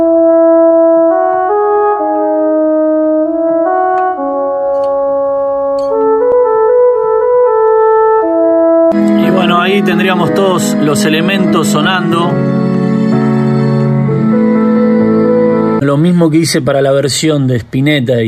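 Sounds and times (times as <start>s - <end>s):
French horn playing a slow legato symphonic arrangement: 0.0s - 15.8s
speech: 9.9s - 12.7s, 15.8s - 18.2s.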